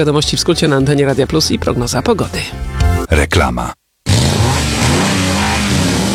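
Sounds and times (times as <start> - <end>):
speech: 0.0 - 3.8
car engine revving: 4.1 - 6.1.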